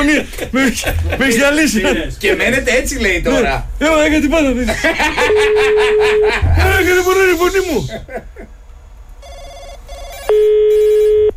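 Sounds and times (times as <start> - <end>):
laughter: 0.0 - 2.1, 4.5 - 8.6
speech: 0.0 - 8.4
faint noise: 0.0 - 11.3
telephone ringing: 5.2 - 6.4, 9.2 - 11.3.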